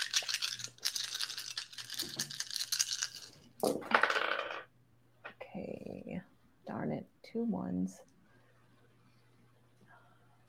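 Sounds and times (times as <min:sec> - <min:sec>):
seven dice rattling in a shaker: 0:00.0 - 0:04.7
speech: 0:03.6 - 0:03.9, 0:07.4 - 0:08.1.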